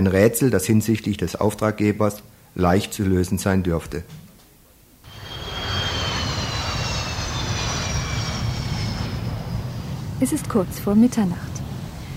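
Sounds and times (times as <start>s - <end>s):
speech: 0.0s - 4.2s, 10.2s - 11.5s
high jet turbine whine: 5.0s - 12.1s
jet airliner engines roaring after landing: 5.1s - 12.1s.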